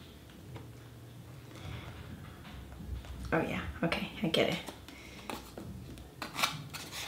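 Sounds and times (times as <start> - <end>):
speech: 3.3 - 4.8
scissors snipping through paper while opening a package: 6.2 - 7.0.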